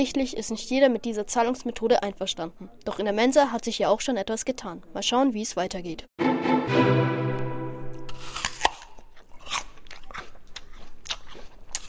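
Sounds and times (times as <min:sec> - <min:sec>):
speech: 0:00.0 - 0:07.1
crisp bite into a juicy apple: 0:08.3 - 0:11.8.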